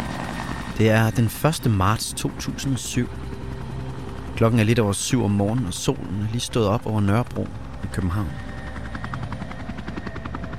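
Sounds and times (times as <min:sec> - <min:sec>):
military helicopter rotor thumping while hovering over a house in Copenhagen: 0:00.0 - 0:10.5
speech: 0:00.8 - 0:03.4, 0:04.4 - 0:08.4.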